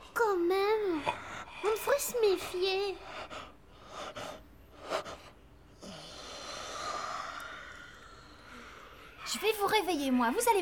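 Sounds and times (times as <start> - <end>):
short breathy intakes: 0.8 - 9.2
speech: 2.1 - 3.2, 9.8 - 10.6
long drawn-out exhaling yawn: 5.8 - 9.2.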